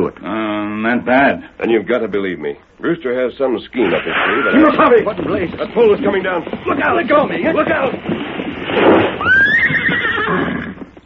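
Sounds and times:
speech: 0:00.0 - 0:08.9
burst of rough noise: 0:03.8 - 0:11.0
horse neighing: 0:03.8 - 0:11.0.

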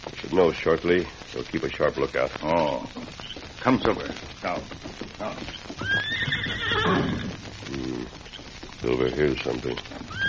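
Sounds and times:
horse hooves clopping on hard ground: 0:00.0 - 0:10.2
speech: 0:00.3 - 0:10.2
saddled horse neighing: 0:05.2 - 0:08.2, 0:10.1 - 0:10.2.

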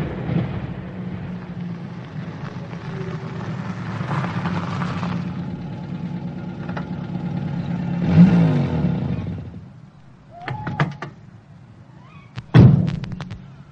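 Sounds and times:
car engine rumbling and revving: 0:00.4 - 0:09.8
clicks: 0:12.3 - 0:13.5.

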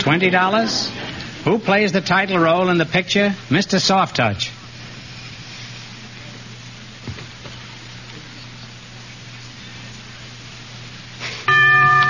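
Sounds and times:
speech: 0:00.0 - 0:04.5
static hiss: 0:00.0 - 0:12.0
quiz show bell ringing: 0:11.5 - 0:12.0.

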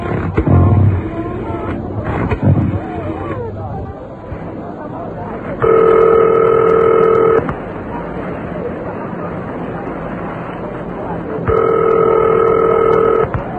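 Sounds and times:
murky murmur: 0:00.0 - 0:13.5
telephone dialing tone with two blended pitches: 0:05.6 - 0:07.5, 0:11.5 - 0:13.4.

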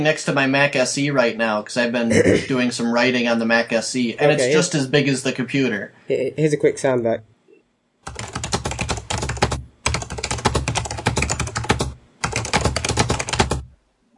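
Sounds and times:
speech: 0:00.0 - 0:07.3
rapid typing on a large computer keyboard: 0:08.0 - 0:13.7.

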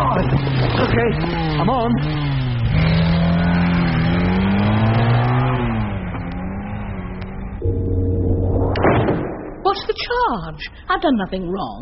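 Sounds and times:
motorbike engine revving: 0:00.0 - 0:08.8
speech: 0:00.1 - 0:03.1, 0:10.3 - 0:11.8.

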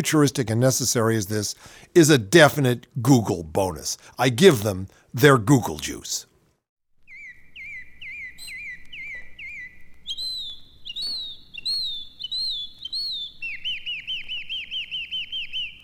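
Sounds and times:
speech: 0:00.0 - 0:06.3
birds chirping and singing: 0:07.1 - 0:15.8.

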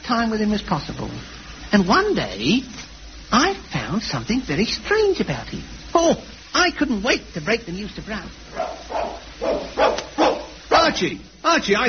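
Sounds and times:
speech: 0:00.1 - 0:08.8, 0:10.9 - 0:11.8
old pet dog barking: 0:08.5 - 0:11.0.

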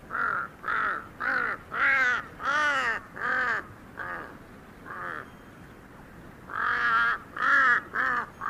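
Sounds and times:
large Tibetan crow giving harsh hoarse caws: 0:00.1 - 0:04.3, 0:04.9 - 0:05.3, 0:06.5 - 0:08.4.

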